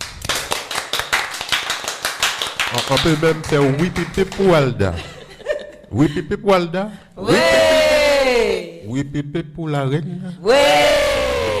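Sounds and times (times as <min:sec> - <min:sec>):
audience applause after a showcase of artists at a radio station: 0:00.0 - 0:04.5
speech: 0:02.7 - 0:05.2, 0:05.9 - 0:11.0
laughter: 0:04.7 - 0:06.5, 0:07.2 - 0:08.1.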